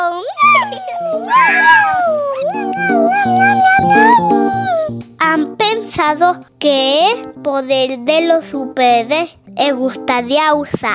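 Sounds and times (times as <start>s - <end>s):
light music: 0.3s - 10.9s
cat meowing with wavering pitch: 0.4s - 4.9s
speech: 6.1s - 10.9s.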